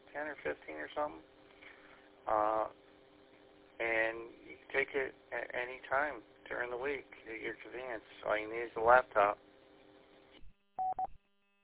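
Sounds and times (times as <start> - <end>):
speech: 0.2 - 1.4, 2.3 - 2.8, 3.8 - 9.4
phone electronic alert of two short mid-pitched beeps: 10.8 - 11.1.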